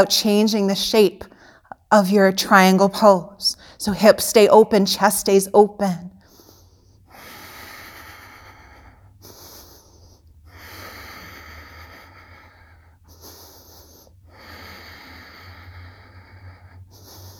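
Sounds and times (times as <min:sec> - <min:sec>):
speech: 0:00.0 - 0:01.3, 0:01.9 - 0:06.1
slow deep breathing through the nose during a yoga pose: 0:06.2 - 0:17.3.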